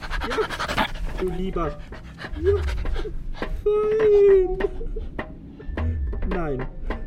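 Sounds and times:
dog whining: 0:00.0 - 0:04.8
dog panting while jumping up at a transit inspector: 0:00.0 - 0:05.6
speech: 0:01.2 - 0:05.2, 0:06.3 - 0:06.8.

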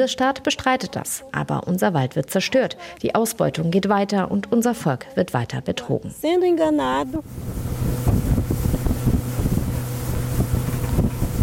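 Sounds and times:
speech: 0:00.0 - 0:08.1
buffeting wind noise over the water: 0:06.8 - 0:11.4
motorboat engine droning while crossing a wide river: 0:06.8 - 0:11.4.

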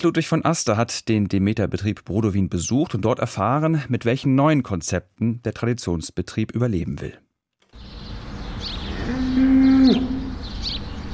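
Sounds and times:
speech: 0:00.0 - 0:07.2
constant hum of barn noise: 0:07.9 - 0:11.1
cow mooing in a barn: 0:08.9 - 0:10.4.

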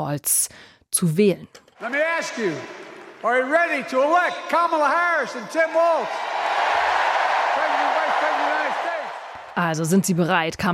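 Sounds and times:
speech: 0:00.0 - 0:06.4, 0:09.6 - 0:10.7
large crowd cheering at a political rally: 0:01.8 - 0:10.2.

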